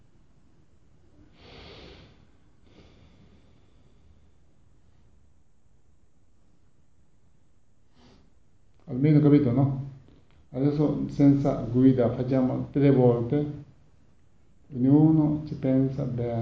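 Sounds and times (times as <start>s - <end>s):
alternate nostril breathing through the nose: 1.3s - 4.5s
speech: 9.0s - 9.8s, 10.5s - 13.6s, 14.7s - 16.3s.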